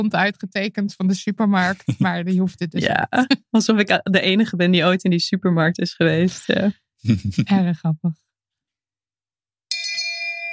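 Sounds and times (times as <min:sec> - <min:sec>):
speech: 0:00.0 - 0:08.2
laughter: 0:01.6 - 0:02.3, 0:06.4 - 0:07.5
bright bell strike from a soundboard button: 0:09.7 - 0:10.5.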